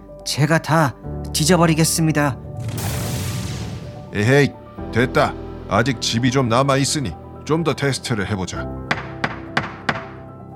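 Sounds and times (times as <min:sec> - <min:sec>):
speech: 0:00.2 - 0:03.0, 0:04.1 - 0:08.8
knocking on a wooden house door: 0:08.9 - 0:10.3.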